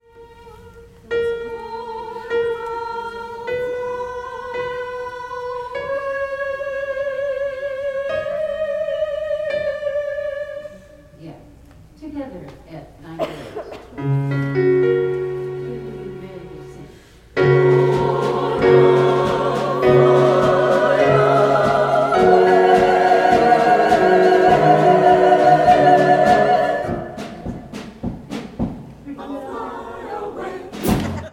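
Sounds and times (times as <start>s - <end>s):
soprano singing a middle note: 0.0s - 11.6s, 14.0s - 28.0s.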